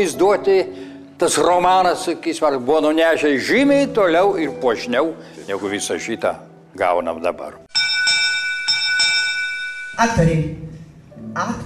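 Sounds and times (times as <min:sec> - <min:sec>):
speech: 0:00.0 - 0:07.6, 0:10.0 - 0:11.6
electric theatre bell ringing the third call to actors: 0:07.7 - 0:10.2.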